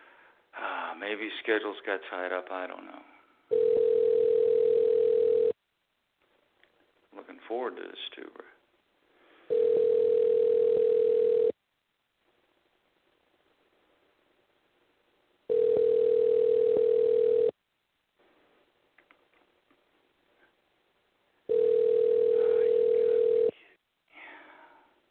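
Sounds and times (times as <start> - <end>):
speech: 1.0 - 3.2, 7.5 - 8.5
outgoing phone call ringback tone heard through a phone line: 3.5 - 5.6, 9.5 - 11.6, 15.5 - 17.6, 21.5 - 23.6.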